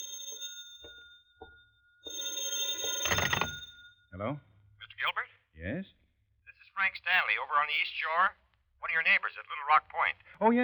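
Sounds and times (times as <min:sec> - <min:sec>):
telephone ringing with a high metallic bell tone: 0:00.0 - 0:04.1
speech: 0:04.2 - 0:04.5, 0:05.6 - 0:06.0, 0:06.9 - 0:10.6.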